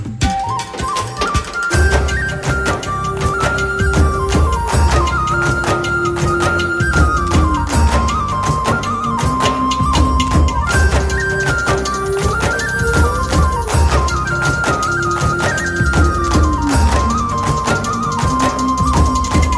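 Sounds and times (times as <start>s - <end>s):
background flute tone: 0.0s - 19.5s.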